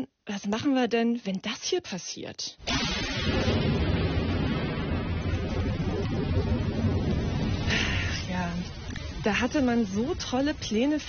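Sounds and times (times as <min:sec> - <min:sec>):
speech: 0:00.0 - 0:03.6, 0:08.5 - 0:11.0
deep rolling rumble of thunder: 0:02.6 - 0:11.0
heavy rain hissing in a thunderstorm: 0:02.6 - 0:11.0.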